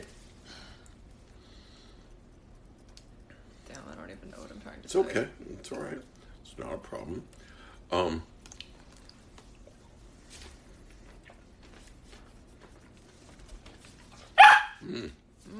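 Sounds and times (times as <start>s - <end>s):
speech: 4.2s - 8.3s
dog barking: 14.4s - 14.9s.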